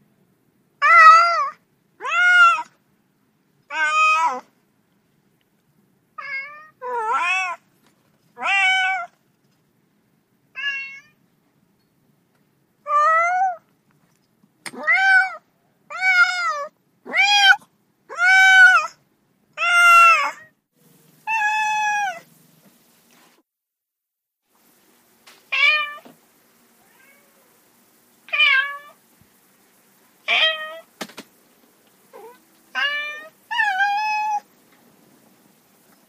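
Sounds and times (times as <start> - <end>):
cats meowing: 0.8 - 2.7, 3.7 - 4.5, 6.2 - 7.6, 8.4 - 9.2, 10.6 - 11.2, 12.9 - 13.6, 14.7 - 19.0, 19.6 - 20.5, 21.3 - 22.3, 25.5 - 26.1, 26.8 - 27.6, 28.3 - 29.0, 30.3 - 30.9, 32.1 - 34.5.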